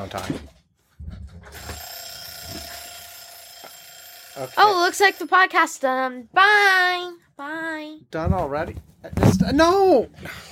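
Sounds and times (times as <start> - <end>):
speech: 0.0 - 0.6, 4.4 - 10.5
kitchen timer alarm with metallic bell ringing: 1.6 - 5.8.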